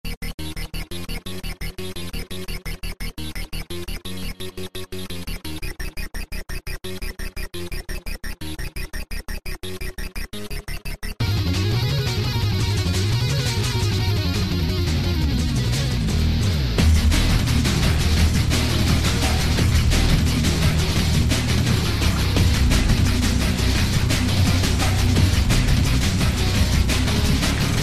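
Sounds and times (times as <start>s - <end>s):
funky guitar: 11.2s - 27.8s.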